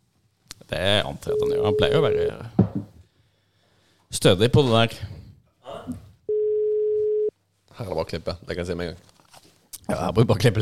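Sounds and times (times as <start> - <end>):
speech: 0.7 - 2.9, 4.1 - 5.2, 7.8 - 9.1, 9.9 - 10.5
telephone ringing tone on an unanswered call: 1.3 - 2.3, 6.3 - 7.3.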